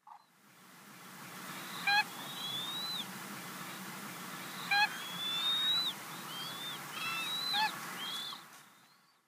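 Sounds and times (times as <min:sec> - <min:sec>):
Siberian Crane calling at Izumi: 0:01.5 - 0:03.1, 0:03.7 - 0:08.4.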